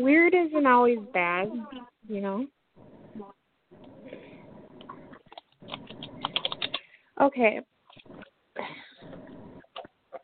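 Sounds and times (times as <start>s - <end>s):
speech: 0.0s - 2.6s, 7.2s - 7.7s
new deck of cards being shuffled: 5.2s - 6.8s.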